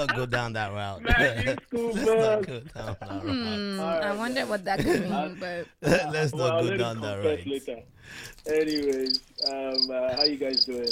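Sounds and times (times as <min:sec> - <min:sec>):
laughter: 0:00.0 - 0:03.8
speech: 0:00.0 - 0:10.9
cricket chirping sound effect from a soundboard: 0:08.6 - 0:10.9.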